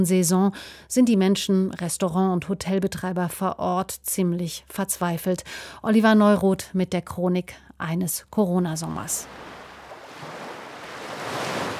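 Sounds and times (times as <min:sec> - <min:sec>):
speech: 0:00.0 - 0:09.5
gentle sea waves washing at a beach: 0:09.0 - 0:11.7
light breeze at a beach: 0:09.2 - 0:11.7.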